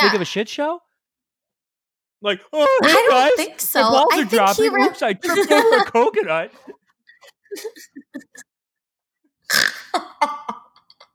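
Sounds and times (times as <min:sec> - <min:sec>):
speech: 0:00.0 - 0:00.8, 0:02.2 - 0:06.8, 0:07.5 - 0:08.4
laughter: 0:05.2 - 0:08.5
person snorting: 0:09.5 - 0:10.0.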